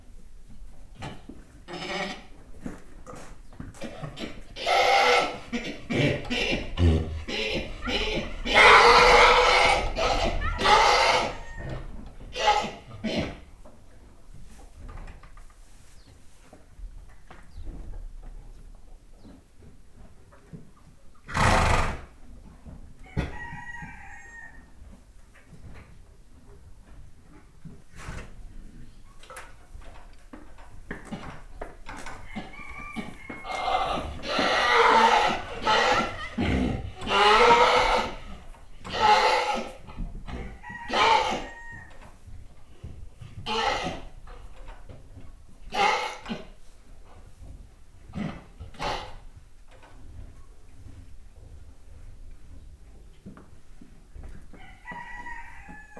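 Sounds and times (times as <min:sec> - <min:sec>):
pony making sounds in a farmyard: 0:01.0 - 0:13.6, 0:31.1 - 0:46.6, 0:48.0 - 0:49.5.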